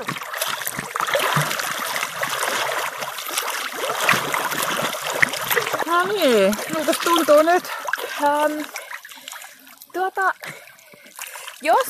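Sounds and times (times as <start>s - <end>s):
water splashing from a person swimming front crawl off a jetty: 0.0s - 11.8s
speech: 6.0s - 8.8s, 10.0s - 10.6s, 11.6s - 11.8s.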